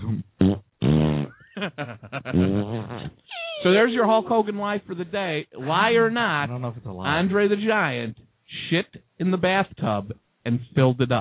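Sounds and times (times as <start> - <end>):
loud blaring fart sound effect: 0.0 - 1.4, 2.3 - 3.7
speech: 1.6 - 11.1.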